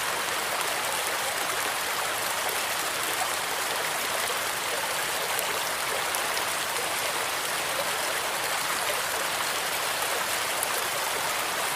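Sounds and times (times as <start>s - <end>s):
forest stream: 0.0s - 11.7s
rain: 0.0s - 11.7s.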